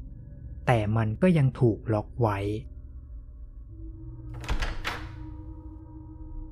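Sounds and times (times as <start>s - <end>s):
steady low droning background: 0.0s - 6.5s
speech: 0.7s - 2.7s
door opening with clunking and scraping swing: 4.3s - 5.5s.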